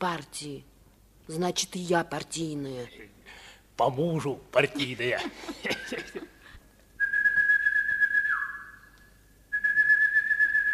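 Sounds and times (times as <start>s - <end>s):
speech: 0.0s - 0.7s, 1.3s - 6.4s
laughter: 4.6s - 6.5s
person whistling a long steady signal tone: 7.0s - 10.7s.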